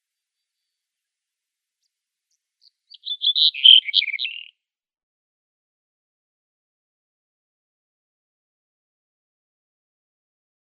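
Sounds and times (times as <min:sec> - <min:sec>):
Black-headed bunting singing: 0:01.8 - 0:04.6.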